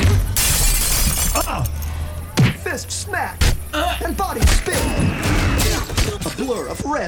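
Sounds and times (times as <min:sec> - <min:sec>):
plate glass window shattering as a man is thrown into it: 0:00.0 - 0:01.8, 0:04.4 - 0:06.8
speech: 0:02.8 - 0:03.5, 0:06.4 - 0:07.0.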